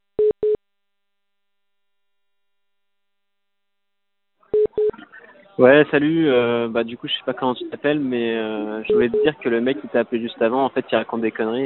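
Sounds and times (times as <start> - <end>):
telephone line beeps while placing a call: 0.2 - 0.6, 4.6 - 4.9, 8.9 - 9.4
speech: 5.6 - 11.6.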